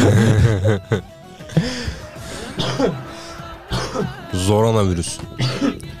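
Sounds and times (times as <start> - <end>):
laughter: 0.0 - 5.8
speech: 0.7 - 1.7, 4.5 - 5.6
ill man coughing: 2.0 - 4.3, 5.4 - 5.9
ill man clearing throat: 2.2 - 4.2, 5.4 - 5.8.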